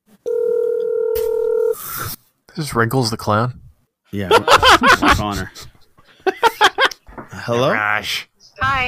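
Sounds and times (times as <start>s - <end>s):
telephone dial tone while placing a call: 0.3s - 1.8s
speech: 2.6s - 5.6s, 7.4s - 8.8s
laughter: 4.3s - 7.1s.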